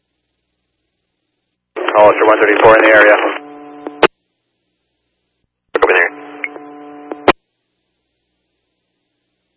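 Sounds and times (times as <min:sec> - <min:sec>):
radio transmission squelch click: 0:01.8 - 0:04.1, 0:05.8 - 0:07.4
speech: 0:02.0 - 0:03.4.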